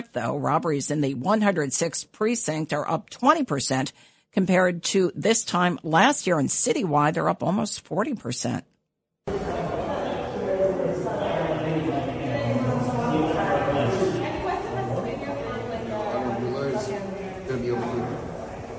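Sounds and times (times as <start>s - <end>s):
speech: 0.2s - 8.7s
murmur of many overlapping voices in a busy indoor space: 9.3s - 18.7s.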